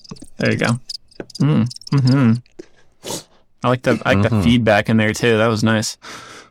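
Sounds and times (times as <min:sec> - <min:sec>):
cricket chirping sound effect: 0:00.0 - 0:02.5
speech: 0:00.1 - 0:06.3.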